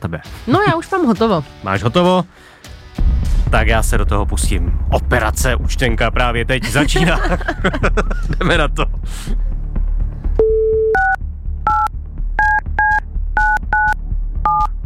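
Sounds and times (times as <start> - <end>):
speech: 0.1 - 2.6, 3.5 - 9.5
laughter: 6.6 - 9.0
low beep: 10.4 - 14.7.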